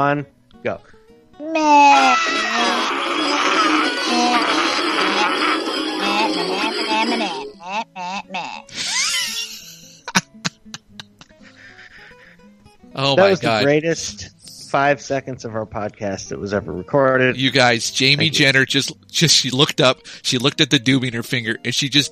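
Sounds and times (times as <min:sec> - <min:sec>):
speech: 0:00.0 - 0:02.3, 0:13.0 - 0:22.1
group of people screaming: 0:01.6 - 0:07.4
scattered breathless laughs and short yelps: 0:01.6 - 0:12.5.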